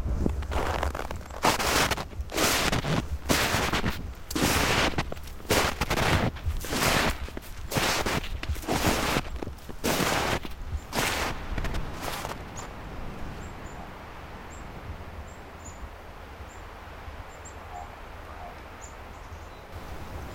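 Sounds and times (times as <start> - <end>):
footsteps crunching through deep snow under jack pine trees: 0.0 - 12.8.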